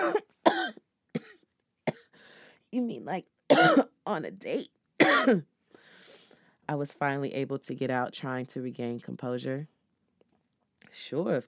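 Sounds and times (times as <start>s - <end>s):
harsh strained coughs after choking on smoke: 0.0s - 2.1s, 3.5s - 3.9s, 5.0s - 5.4s
speech: 2.7s - 5.5s, 6.7s - 9.8s, 10.9s - 11.4s.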